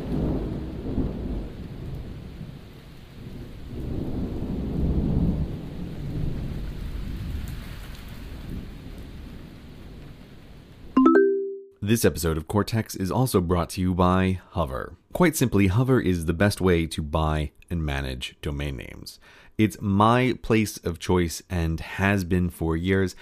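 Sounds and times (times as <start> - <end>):
low rolling thunder rumbling: 0.0 - 7.5
speech: 11.9 - 23.2.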